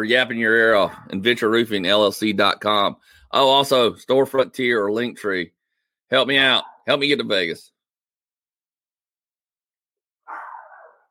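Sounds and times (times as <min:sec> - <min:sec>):
speech: 0:00.0 - 0:07.7
dog barking: 0:06.6 - 0:06.9, 0:10.3 - 0:11.0.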